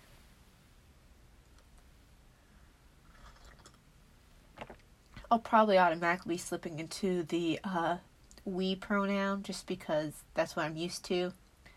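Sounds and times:
steady low hiss: 0.0s - 11.7s
person sipping tea with slurping: 3.0s - 3.8s
speech: 5.3s - 11.4s.

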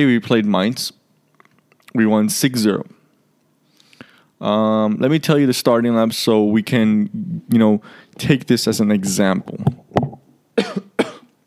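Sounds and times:
speech: 0.0s - 1.0s, 1.9s - 3.0s, 4.4s - 9.8s
person coughing: 10.6s - 11.3s.

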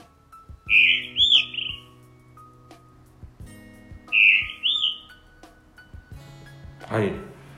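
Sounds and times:
blue rock thrush singing from a church roof: 0.7s - 2.0s, 4.1s - 5.4s
speech: 6.9s - 7.3s.

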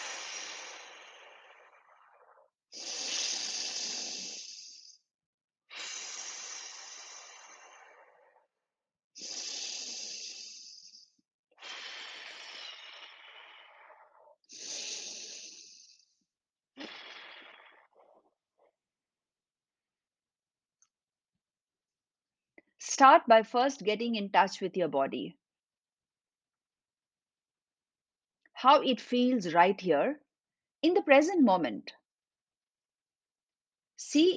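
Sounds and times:
slow deep breathing during a guided breathing exercise: 0.0s - 5.1s, 5.7s - 18.3s
speech: 23.0s - 25.4s, 28.6s - 30.2s, 30.8s - 32.0s, 34.1s - 34.3s.

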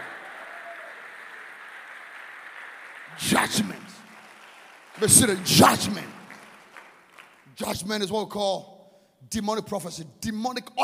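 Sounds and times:
audience clapping hands during a prayer: 0.0s - 7.8s
speech: 3.1s - 4.1s, 5.0s - 6.2s, 7.6s - 8.7s, 9.3s - 10.8s.

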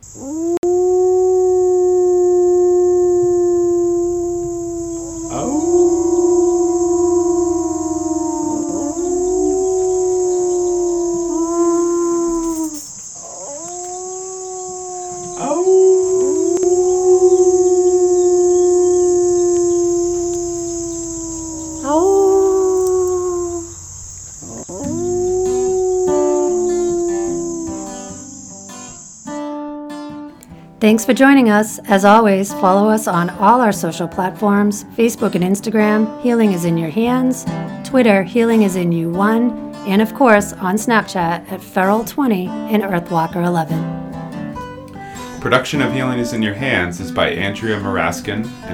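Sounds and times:
dog howling: 0.0s - 29.0s
speech: 0.2s - 0.6s, 30.8s - 44.0s, 45.4s - 48.7s.

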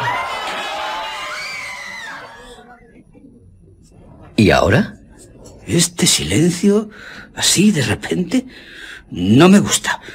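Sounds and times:
crowd of people shouting and screaming outdoors: 0.0s - 2.6s
speech: 4.4s - 5.0s, 5.7s - 10.1s.

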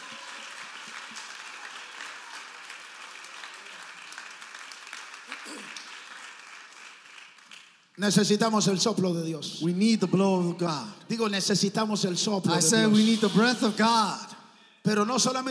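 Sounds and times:
congregation applauding at a bilingual church service: 0.0s - 8.5s
speech: 8.0s - 15.4s.

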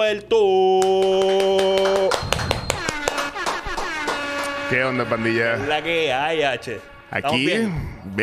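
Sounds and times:
speech: 0.0s - 1.6s, 4.7s - 8.2s
hand clapping from a few people: 0.7s - 5.2s
steady held tone: 1.9s - 8.0s.

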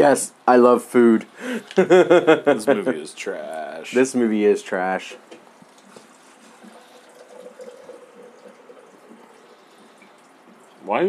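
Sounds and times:
speech: 0.0s - 5.3s, 10.9s - 11.0s
laughter: 1.5s - 3.1s
water pouring into a cup: 5.5s - 10.8s.

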